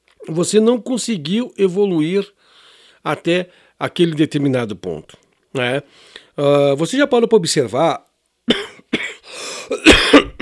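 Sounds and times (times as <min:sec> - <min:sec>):
speech: 0:00.3 - 0:02.4, 0:03.0 - 0:08.8
short raspy breath: 0:02.4 - 0:03.8, 0:05.9 - 0:06.4, 0:09.2 - 0:09.7
person coughing harsh dry coughs during a talk: 0:08.5 - 0:10.4.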